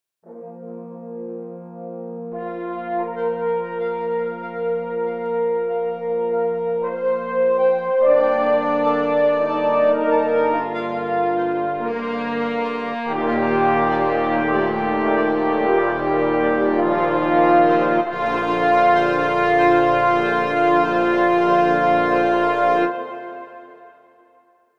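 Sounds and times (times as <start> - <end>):
French horn section playing: 0.3 - 24.3.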